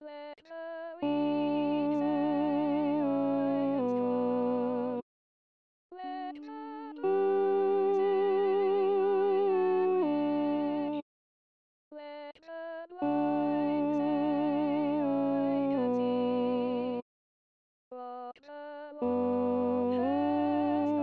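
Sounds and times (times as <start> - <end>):
alto choristers singing: 1.0 - 5.0, 6.5 - 11.0, 13.0 - 17.0, 19.0 - 21.0.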